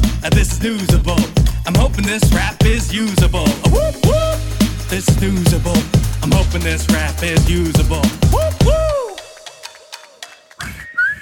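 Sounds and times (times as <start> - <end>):
speech: 0.2 - 9.0
person attempting to whistle with breathy puffs: 3.6 - 4.4, 8.3 - 9.3, 10.6 - 11.2
short thin rising whistle note: 10.6 - 11.2.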